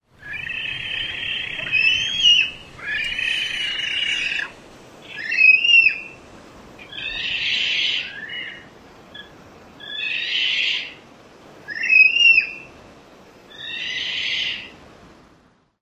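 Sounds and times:
Magnificent Frigatebird screaming at night: 0.2 - 6.2, 6.9 - 11.0, 13.5 - 14.7.

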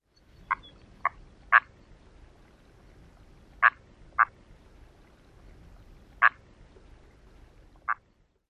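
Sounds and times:
Red-breasted Merganser croaking softly: 0.5 - 1.8, 3.6 - 4.4, 6.2 - 6.4, 7.8 - 8.1.

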